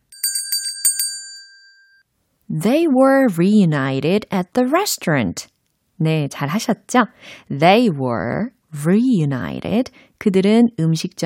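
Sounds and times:
bright bell-like correct-answer chime: 0:00.1 - 0:02.0
speech: 0:02.5 - 0:11.2.

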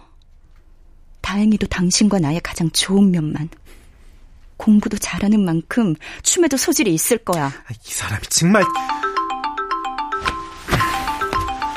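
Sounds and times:
speech: 0:01.3 - 0:03.8, 0:04.6 - 0:09.0
phone ringtone of bright electronic tones: 0:08.6 - 0:11.7.

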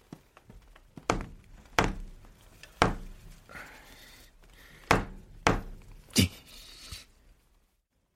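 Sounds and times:
rubber mallet thudding against an apartment wall in protest at noise: 0:01.0 - 0:03.4, 0:04.8 - 0:06.1.

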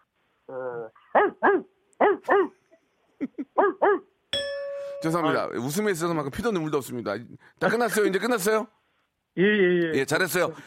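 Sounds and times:
speech: 0:00.5 - 0:02.5, 0:05.0 - 0:08.8, 0:09.4 - 0:10.6
person imitating a big dog's bark with their voice: 0:00.5 - 0:02.6, 0:09.4 - 0:10.1
laughter: 0:03.2 - 0:03.6
sustained bell-like ding: 0:04.3 - 0:05.4.

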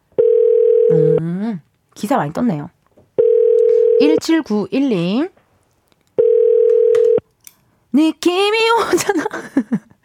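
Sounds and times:
telephone dial tone while placing a call: 0:00.2 - 0:01.2, 0:03.2 - 0:04.2, 0:06.2 - 0:07.2
speech: 0:00.9 - 0:02.8, 0:04.0 - 0:05.4, 0:07.9 - 0:09.9.

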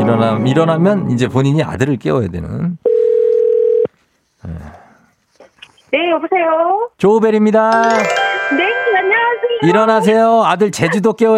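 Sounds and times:
speech: 0:00.1 - 0:02.8, 0:05.9 - 0:08.7, 0:09.6 - 0:11.3
telephone dial tone while placing a call: 0:02.9 - 0:03.9.

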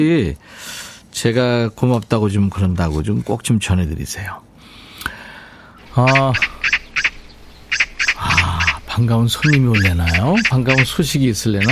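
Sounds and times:
speech: 0:00.0 - 0:04.5, 0:06.0 - 0:06.6, 0:09.0 - 0:11.7
magpie giving harsh raspy calls: 0:05.8 - 0:11.7.

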